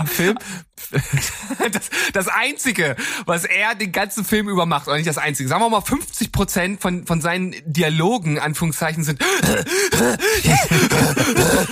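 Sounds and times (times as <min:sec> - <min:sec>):
voice imitating a film actor's heavy rapid panting: 0:00.0 - 0:01.2, 0:09.2 - 0:11.7
laughter: 0:00.0 - 0:02.2, 0:10.4 - 0:11.6
speech: 0:00.0 - 0:11.7.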